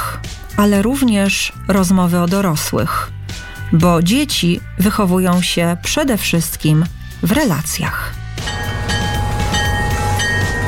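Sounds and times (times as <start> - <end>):
speech: 0.6 - 8.2
train running on rails with rolling wheel noise: 8.4 - 10.6.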